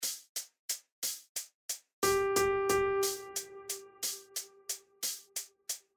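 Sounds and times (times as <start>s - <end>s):
eighth notes in ternary rhythm: 2.0s - 5.5s.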